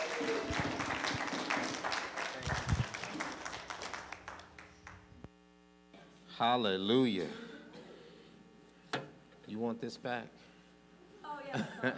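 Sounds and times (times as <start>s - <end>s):
crowd applauding for arriving speaker: 0.0s - 5.1s
quiet hum: 0.0s - 11.9s
speech: 6.4s - 7.4s, 9.5s - 10.5s, 11.4s - 11.9s
laughter: 11.5s - 11.9s.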